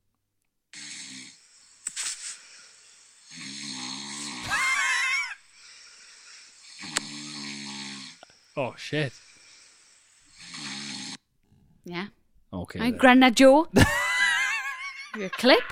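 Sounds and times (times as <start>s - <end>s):
sleeping man snoring: 0.7s - 1.7s, 2.5s - 11.2s
speech: 8.6s - 9.2s, 11.9s - 14.0s, 15.2s - 15.7s.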